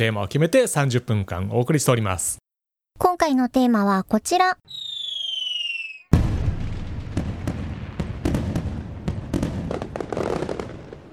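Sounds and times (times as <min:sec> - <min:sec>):
speech: 0:00.0 - 0:02.4, 0:03.0 - 0:04.9
firework whistling tone: 0:04.7 - 0:06.1
fireworks exploding with crackling pops and bangs: 0:04.7 - 0:11.1.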